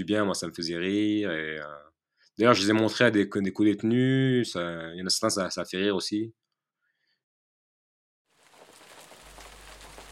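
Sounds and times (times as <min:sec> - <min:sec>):
speech: 0:00.0 - 0:06.4
steady rain falling: 0:08.3 - 0:10.1.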